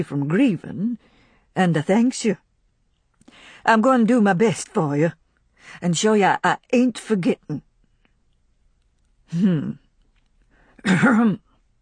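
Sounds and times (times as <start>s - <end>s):
speech: 0.0s - 2.5s, 3.3s - 7.7s, 9.3s - 9.8s, 10.8s - 11.4s
person clearing throat: 10.8s - 11.5s.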